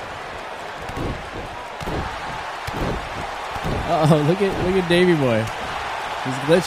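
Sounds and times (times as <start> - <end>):
noisy roar of arena background: 0.0 - 6.6
wrestler knocked to the mat with body-slam thuds: 0.9 - 4.8
speech: 3.9 - 5.6, 6.2 - 6.6.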